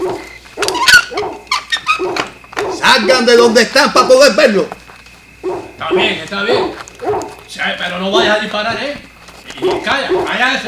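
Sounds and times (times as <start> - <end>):
dog barking with higher yips: 0.0 - 2.9, 5.4 - 7.4, 8.1 - 8.5, 9.6 - 10.6
people's voices: 2.6 - 10.6
speech: 2.9 - 4.8, 5.8 - 6.8, 7.5 - 10.6.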